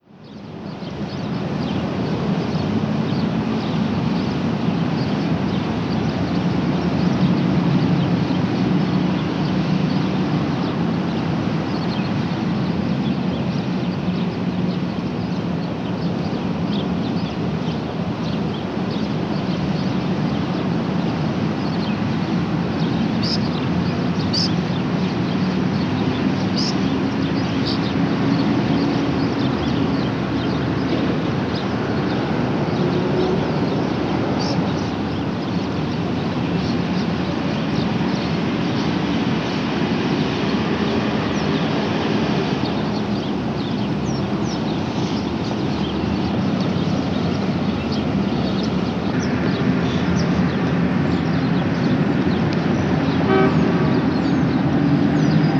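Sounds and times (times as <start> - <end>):
suburban highway traffic: 0.1 - 55.5
birds: 0.2 - 55.5.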